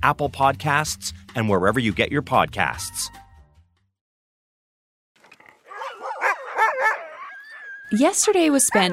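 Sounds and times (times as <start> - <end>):
speech: 0.0 - 3.2, 7.9 - 8.9
excited dogs barking and yelping while taken for a ride: 5.3 - 8.9.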